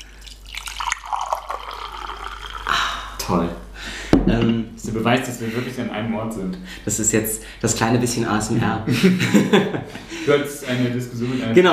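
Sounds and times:
fresh tea pouring into a cup: 0.0s - 2.8s
speech: 3.3s - 3.6s, 4.3s - 11.7s
laughter: 8.8s - 11.6s.

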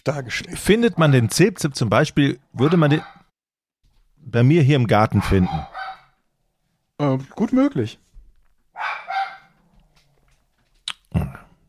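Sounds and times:
speech: 0.0s - 3.2s, 4.2s - 5.8s, 7.0s - 8.0s
dog barking excitedly: 0.9s - 1.3s, 2.6s - 3.3s, 5.1s - 6.2s, 8.7s - 9.6s.

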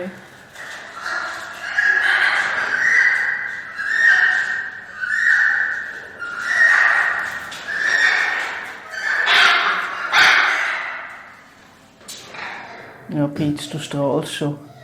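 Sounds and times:
speech: 0.0s - 0.3s, 13.2s - 14.7s
animal copulation call with nasal wavering calls: 0.0s - 11.4s.

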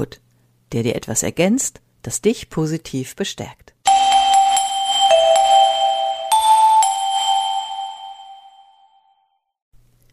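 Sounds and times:
speech: 0.0s - 4.1s
short chime jingle of bright bell-like struck notes: 3.9s - 9.4s.

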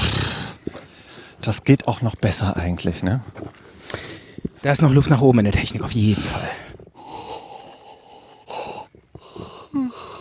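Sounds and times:
speech: 1.4s - 6.7s
person yawning through an open mouth with a sliding groan: 9.6s - 10.1s.

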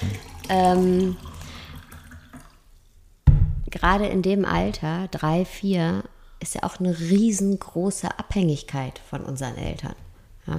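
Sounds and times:
water trickling and splashing into a glass: 0.0s - 3.0s
speech: 0.5s - 1.3s, 3.8s - 10.5s
short loud low thud: 3.2s - 4.8s.

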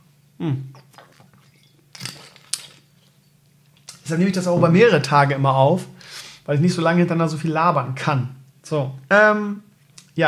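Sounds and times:
speech: 0.4s - 1.0s, 4.1s - 10.2s
throat and mouth noises: 0.4s - 1.6s
swallowing: 0.4s - 1.7s.

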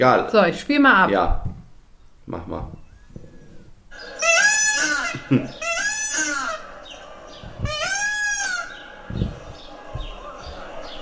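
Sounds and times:
speech: 0.0s - 1.6s, 2.3s - 2.8s, 5.2s - 5.6s
peacock call: 3.9s - 9.7s
laughter: 4.7s - 6.6s.

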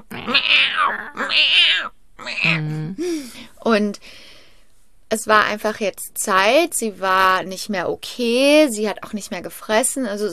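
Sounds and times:
human voice imitating an old cat meowing: 0.0s - 3.0s
speech: 3.7s - 4.2s, 5.1s - 10.3s.

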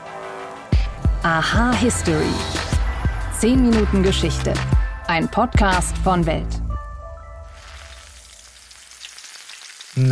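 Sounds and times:
speech: 1.2s - 2.7s, 3.4s - 6.6s
French fries sizzling in hot oil in a deep fryer: 7.6s - 10.1s.

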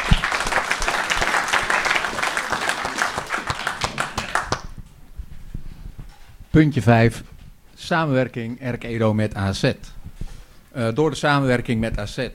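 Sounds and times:
crowd of people applauding a committee: 0.0s - 4.8s
speech: 6.6s - 10.0s, 10.8s - 12.3s.

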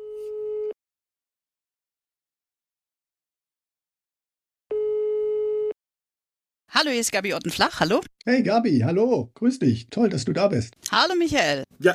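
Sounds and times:
telephone ringback tone while a call is placed: 0.0s - 0.8s, 4.7s - 5.8s
speech: 6.7s - 11.9s.

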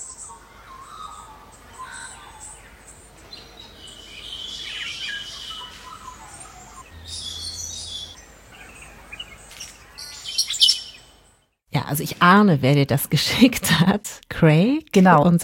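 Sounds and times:
morning chorus of birds on Kangaroo Island Australia: 0.0s - 11.6s
speech: 11.9s - 15.4s.

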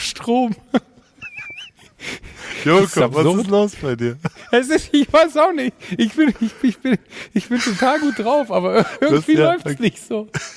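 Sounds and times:
speech: 0.2s - 0.9s, 2.6s - 10.5s
laughter: 0.5s - 10.5s
person panting heavily while moving back and forth: 1.8s - 2.8s, 7.0s - 7.4s.

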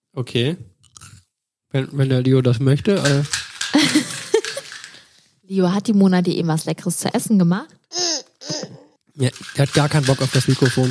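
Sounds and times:
speech: 0.2s - 0.7s, 1.7s - 4.0s, 5.5s - 8.6s, 9.2s - 10.8s
chewing gum being bitten and chewed: 0.8s - 1.3s
laughter: 3.8s - 4.8s.

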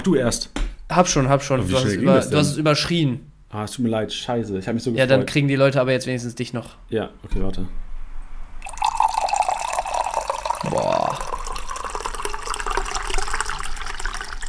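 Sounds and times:
speech: 0.0s - 7.8s
person exclaiming: 1.7s - 2.6s, 10.6s - 11.4s
tea pouring into a large 0.7 litre mug: 8.6s - 14.4s.

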